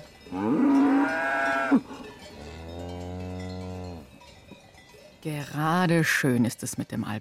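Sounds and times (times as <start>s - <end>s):
faint cowbell clinking: 0.0s - 7.1s
cows mooing on an alpine pasture: 0.3s - 4.2s
speech: 5.2s - 7.1s.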